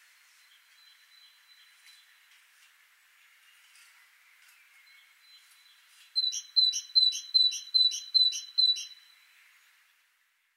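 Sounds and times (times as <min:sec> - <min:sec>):
Great tit Parus major call series: 0:06.2 - 0:09.0.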